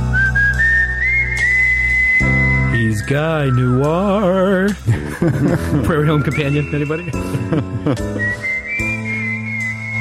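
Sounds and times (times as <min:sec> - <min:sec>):
long whistle: 0:00.1 - 0:04.5, 0:06.2 - 0:07.3, 0:08.1 - 0:10.0
speech: 0:03.1 - 0:08.5
laughter: 0:04.9 - 0:06.1, 0:07.2 - 0:08.4.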